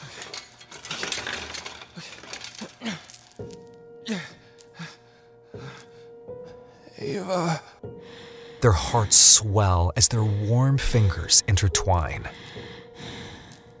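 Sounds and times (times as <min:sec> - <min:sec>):
metal keys jangling: 0:00.0 - 0:03.6
chain links clinking while being unlocked: 0:00.0 - 0:03.8
speech: 0:04.1 - 0:04.3, 0:07.1 - 0:07.7, 0:08.6 - 0:12.6.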